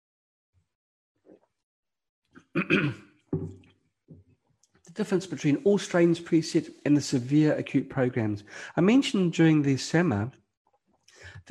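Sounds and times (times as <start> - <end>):
harsh coughs ending in a throat-clearing rasp: 2.4 - 3.0
speech: 2.6 - 3.6, 5.0 - 10.4.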